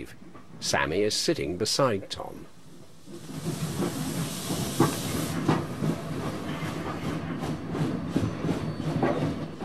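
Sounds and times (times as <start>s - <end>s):
speech: 0.0s - 3.6s
steam venting from steam train: 2.6s - 7.0s
steam train chugging and pulling out of station: 2.6s - 9.6s
rail clatter: 3.0s - 9.6s.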